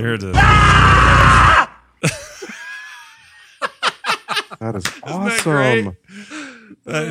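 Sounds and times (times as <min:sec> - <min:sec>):
speech: 0:00.0 - 0:01.1, 0:04.6 - 0:06.2, 0:06.8 - 0:07.1
actor's loud raw film yell recorded in a sound booth: 0:00.4 - 0:01.8
laughter: 0:02.0 - 0:05.7.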